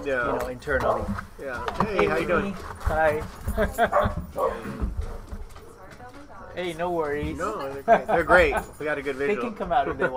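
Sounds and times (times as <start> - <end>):
speech: 0.0 - 5.1, 6.6 - 10.1
faint noise: 0.0 - 10.1
laughter: 3.4 - 4.8, 7.4 - 10.1
dogs barking: 3.8 - 5.8.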